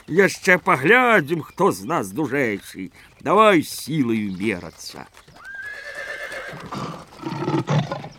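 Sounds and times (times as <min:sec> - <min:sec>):
speech: 0:00.1 - 0:05.3, 0:06.5 - 0:07.7
horse neighing: 0:05.4 - 0:08.1
horse snorting: 0:05.8 - 0:08.1.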